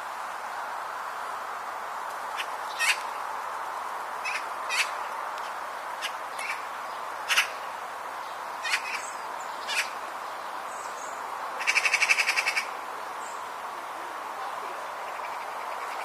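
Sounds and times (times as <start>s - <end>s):
steady background hiss: 0.0s - 16.0s
Eurasian magpie Pica pica harsh rattling chatter: 8.6s - 9.0s, 11.6s - 12.7s.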